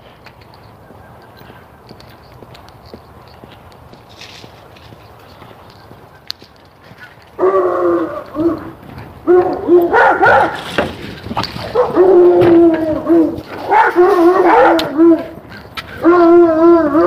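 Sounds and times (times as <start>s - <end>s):
several dogs on a street barking: 6.9s - 17.0s.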